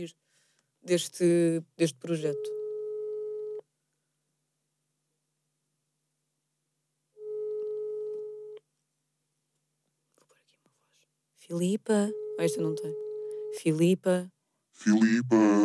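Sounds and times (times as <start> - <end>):
speech: 0.0 - 2.6, 11.5 - 15.6
phone ringback tone of unanswered call: 2.3 - 3.6, 7.2 - 8.6, 12.1 - 13.6.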